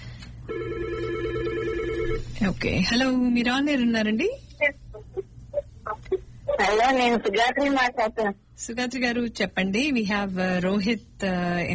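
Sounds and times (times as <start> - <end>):
speech: 0.5 - 0.8, 2.4 - 4.8, 6.6 - 11.7
telephone ringing with an incoming call in a studio: 0.5 - 2.2.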